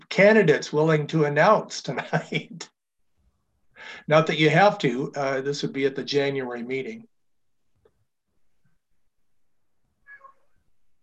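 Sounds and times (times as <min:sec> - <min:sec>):
speech: 0:00.2 - 0:02.7, 0:03.8 - 0:07.1
newly acquired male cat meowing: 0:10.0 - 0:10.5.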